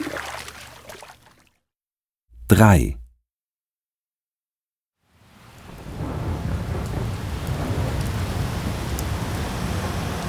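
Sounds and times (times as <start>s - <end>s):
speech: 2.5s - 3.0s
heavy rain in cold windy weather: 5.8s - 10.2s.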